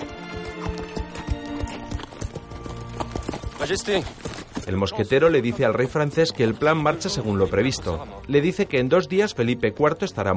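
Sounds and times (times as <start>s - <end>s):
horse hooves clip-clopping on a road: 0.0s - 8.1s
speech: 3.6s - 10.3s.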